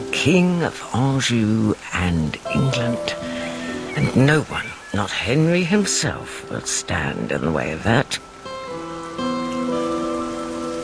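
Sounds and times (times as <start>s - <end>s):
rain falling steadily: 0.0s - 10.8s
speech: 0.2s - 3.3s, 4.0s - 8.3s.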